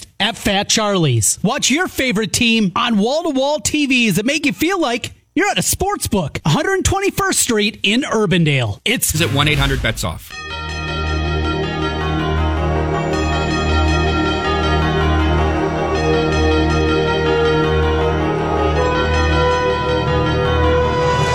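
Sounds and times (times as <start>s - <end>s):
speech: 0.3s - 10.7s
orchestral sports broadcast theme music: 9.1s - 21.3s
chiming bells: 13.1s - 20.3s.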